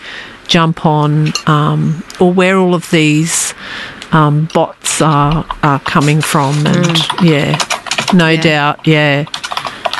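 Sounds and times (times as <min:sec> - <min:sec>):
speech: 0:00.5 - 0:03.4, 0:04.1 - 0:09.4
keyboard typing clicks: 0:04.5 - 0:08.6, 0:09.2 - 0:09.9.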